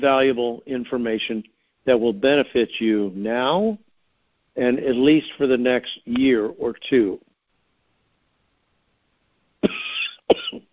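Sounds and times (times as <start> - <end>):
speech: 0.0 - 3.8, 4.6 - 7.3, 9.6 - 10.7
person coughing sharply: 9.6 - 10.6.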